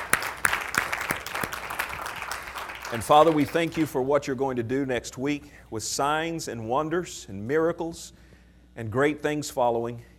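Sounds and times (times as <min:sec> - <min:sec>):
congregation hand clapping in a church during a worship service: 0:00.0 - 0:04.1
speech: 0:02.9 - 0:08.2, 0:08.8 - 0:10.1.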